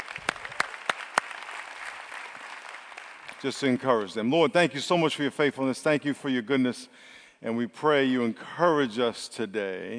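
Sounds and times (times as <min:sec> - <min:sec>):
sharp hand claps: 0:00.0 - 0:03.5
audience clapping in a roomy space: 0:00.0 - 0:04.2
speech: 0:03.4 - 0:09.9.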